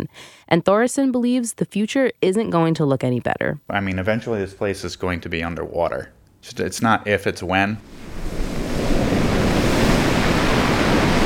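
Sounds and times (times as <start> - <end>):
speech: 0.0 - 8.5
gusty wind rumble: 7.8 - 11.2
wind-driven ocean waves breaking on a sandy beach: 7.8 - 11.2.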